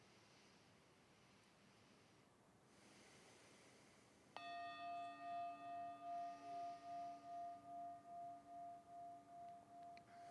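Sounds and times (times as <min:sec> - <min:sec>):
meditation bell ringing: 0:04.4 - 0:10.2.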